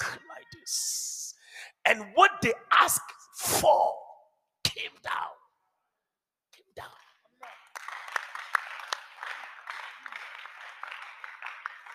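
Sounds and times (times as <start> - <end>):
speech: 1.8 - 4.0, 4.8 - 5.4
crowd clapping: 7.3 - 11.9.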